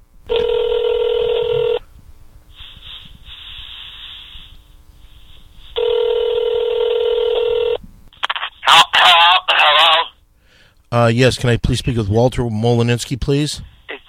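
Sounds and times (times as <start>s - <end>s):
telephone ring tones over a hissy phone line: 0.3s - 1.8s, 5.8s - 7.8s
phone line static: 0.3s - 1.9s, 5.8s - 10.2s
voice answering on a phone line: 8.3s - 10.2s, 13.9s - 14.0s
speech: 11.0s - 13.7s.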